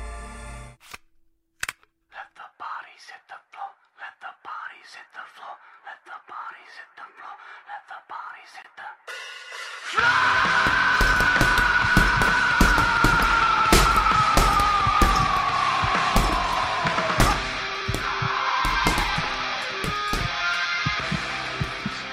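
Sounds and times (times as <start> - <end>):
loud driving music: 9.8 - 22.1
fists punching a punching ball: 10.6 - 22.0.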